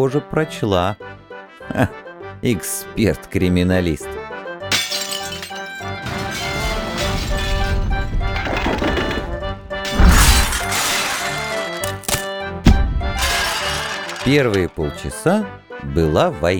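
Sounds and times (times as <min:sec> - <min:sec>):
speech: 0:00.0 - 0:04.2, 0:14.3 - 0:16.5
clatter and shattering of breaking dishes: 0:04.7 - 0:09.3, 0:09.9 - 0:12.3, 0:13.2 - 0:14.8
metallic crash of a toppling samovar: 0:04.7 - 0:14.7.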